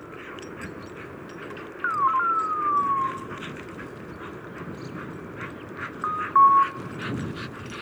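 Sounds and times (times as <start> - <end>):
wind: 0.0 - 7.7
electronic beeper tones from hunting dog transmitter collars: 1.9 - 3.3, 6.0 - 6.9.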